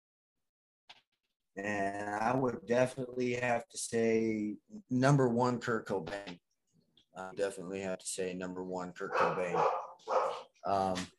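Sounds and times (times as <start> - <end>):
speech: 1.6 - 6.4, 7.2 - 11.1
female pet bulldog barking and yowling: 9.1 - 10.5.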